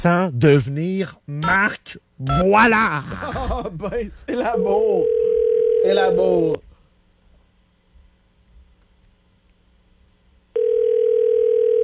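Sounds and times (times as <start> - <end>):
speech: 0.0 - 6.7
laughter: 3.0 - 4.8
telephone ringback tone on an outgoing call: 4.6 - 6.3, 10.6 - 11.8.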